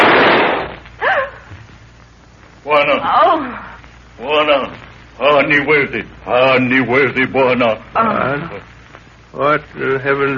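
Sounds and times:
gunshot: 0:00.0 - 0:00.8
person crying out: 0:01.0 - 0:01.4
speech: 0:02.7 - 0:08.7, 0:09.3 - 0:10.3.

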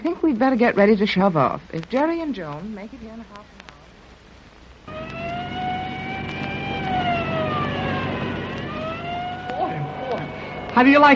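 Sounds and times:
speech: 0:00.1 - 0:03.6, 0:10.8 - 0:11.1
engine and road noise from a moving vehicle: 0:04.1 - 0:11.1
police car siren wailing: 0:04.9 - 0:11.1.

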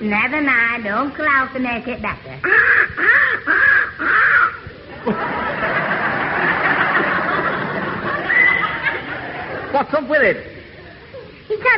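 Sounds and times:
speech: 0:00.0 - 0:04.2, 0:05.0 - 0:05.8, 0:09.8 - 0:10.5, 0:11.5 - 0:11.7
young crow with a hurt leg cawing hoarsely: 0:02.4 - 0:04.7
laughter: 0:03.0 - 0:10.0, 0:10.6 - 0:11.5.

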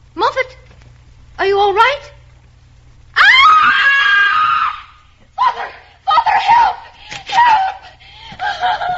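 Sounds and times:
speech: 0:01.4 - 0:02.1
woman screaming: 0:03.2 - 0:08.9.

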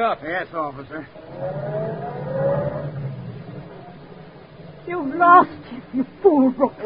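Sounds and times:
speech: 0:00.0 - 0:02.6, 0:04.9 - 0:06.8
car engine revving as car drives: 0:01.0 - 0:05.9.

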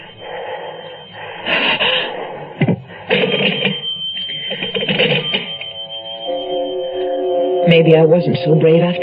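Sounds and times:
old-fashioned home telephone bell ringing: 0:03.1 - 0:09.0
speech: 0:07.8 - 0:09.0.

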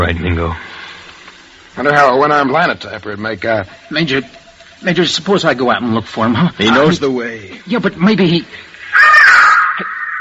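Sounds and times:
speech: 0:00.0 - 0:00.7, 0:01.8 - 0:08.7
bird giving a harsh cawing cry: 0:08.8 - 0:10.1.

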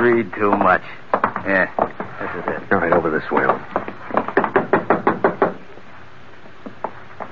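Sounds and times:
speech: 0:00.0 - 0:03.8
firm knocks on a wooden door: 0:00.5 - 0:05.6.

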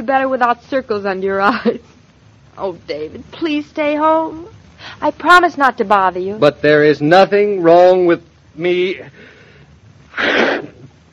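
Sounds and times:
speech: 0:00.0 - 0:01.9, 0:02.6 - 0:09.4
sneeze: 0:10.1 - 0:10.9.

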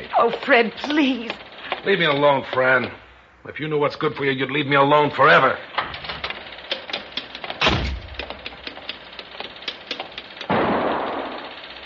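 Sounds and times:
steady patter of sharp mechanical clicks: 0:00.0 - 0:03.0, 0:05.7 - 0:11.8
speech: 0:00.2 - 0:05.7
gunshots with booming echo: 0:10.5 - 0:11.5.

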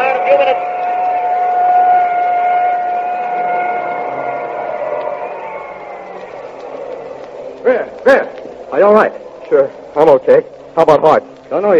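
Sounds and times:
ambulance siren passing: 0:00.0 - 0:07.6
rumbling noise: 0:00.0 - 0:11.7
speech: 0:08.8 - 0:11.7.

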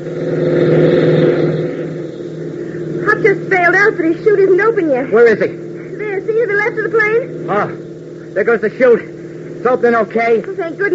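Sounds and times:
speech: 0:00.0 - 0:00.4, 0:03.9 - 0:05.6, 0:06.7 - 0:07.8, 0:08.4 - 0:10.9
jeep engine racing across an airfield: 0:00.0 - 0:10.9.

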